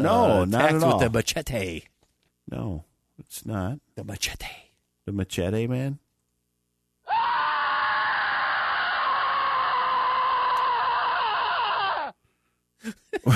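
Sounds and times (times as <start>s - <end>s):
speech: 0.0s - 1.9s, 2.5s - 6.0s, 12.8s - 13.3s
man screaming: 7.1s - 12.1s.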